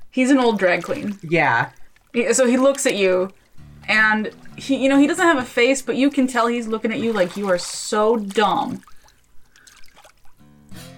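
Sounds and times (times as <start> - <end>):
water trickling and splashing: 0.0 - 10.5
speech: 0.2 - 8.9
bright gurgling pour of water: 0.5 - 3.6, 4.2 - 4.7, 6.4 - 10.4.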